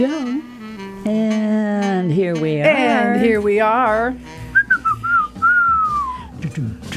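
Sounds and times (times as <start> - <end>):
speech: 0.0 - 1.4, 2.0 - 4.3
person whistling a short melodic phrase: 4.5 - 6.4.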